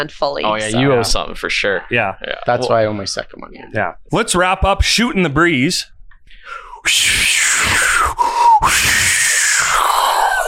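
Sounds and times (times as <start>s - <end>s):
speech: 0.0s - 5.9s, 6.5s - 10.4s
heavy rasping breathing: 6.2s - 10.4s.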